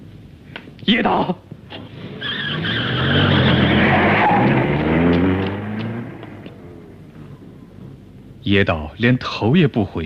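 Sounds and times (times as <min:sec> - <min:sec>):
speech: 0:00.9 - 0:01.5, 0:08.5 - 0:10.0
car tires squealing: 0:01.7 - 0:07.6
car engine roaring as the car is driven wildly through the night: 0:01.7 - 0:08.4.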